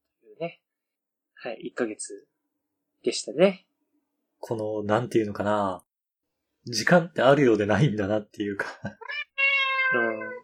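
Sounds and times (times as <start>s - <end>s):
speech: 0.4s - 0.6s, 1.4s - 2.3s, 3.0s - 3.7s, 4.4s - 5.9s, 6.6s - 9.3s, 9.9s - 10.4s
cat meowing: 9.0s - 10.4s.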